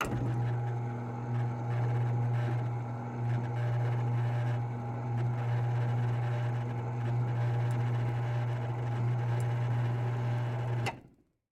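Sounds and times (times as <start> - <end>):
automated motorized canvas projector screen rolling down: 0.0 - 11.0.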